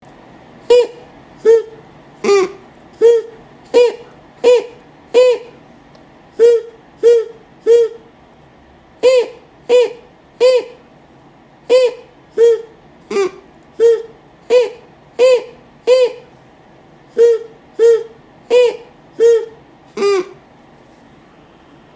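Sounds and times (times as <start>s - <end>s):
paper flute playing a song: 0.7s - 5.6s, 6.4s - 8.0s, 11.7s - 16.3s, 17.2s - 20.4s.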